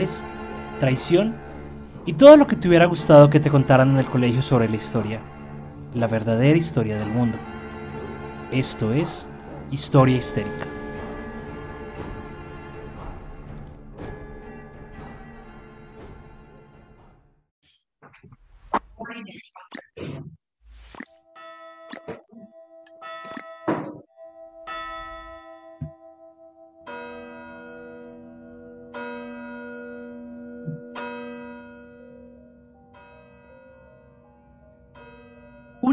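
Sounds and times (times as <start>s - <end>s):
speech: 0.0s - 1.4s, 2.0s - 5.3s, 5.9s - 7.5s, 8.5s - 10.7s
church bell ringing at night in November: 0.0s - 16.2s, 21.3s - 21.9s, 22.5s - 35.9s.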